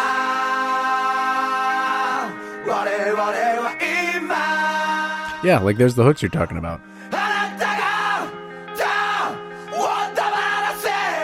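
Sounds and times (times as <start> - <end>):
loud rock music: 0.0 - 11.2
speech: 3.0 - 3.4, 5.4 - 7.2
harsh screamed vocals: 7.2 - 11.2.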